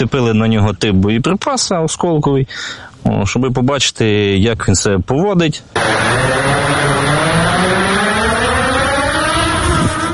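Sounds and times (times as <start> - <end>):
speech: 0.0 - 7.9
drone motors and propellers buzzing and whining: 5.8 - 10.1.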